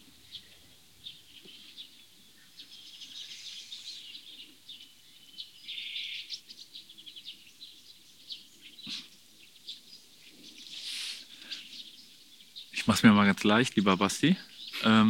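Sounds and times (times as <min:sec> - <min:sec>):
bird chirping: 0:00.0 - 0:15.0
soft outdoor hum: 0:00.0 - 0:15.0
speech: 0:12.9 - 0:15.0.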